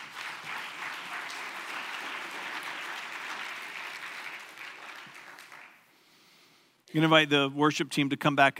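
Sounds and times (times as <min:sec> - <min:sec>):
room full of people applauding: 0:00.0 - 0:05.9
speech: 0:06.9 - 0:08.5.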